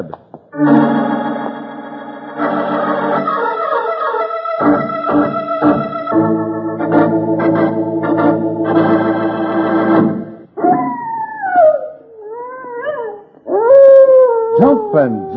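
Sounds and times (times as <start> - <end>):
speech: 0.0 - 1.0
sustained music: 0.6 - 10.6
prairie wolf howling: 10.6 - 15.3.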